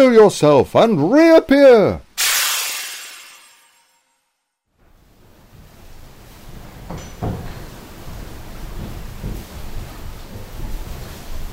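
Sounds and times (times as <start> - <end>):
speech: 0.0 - 2.0
whoosh: 2.2 - 4.2
mill's original large water wheel turning inside the building: 5.6 - 11.5
wooden clunks and creaks of water wheel: 6.5 - 11.1.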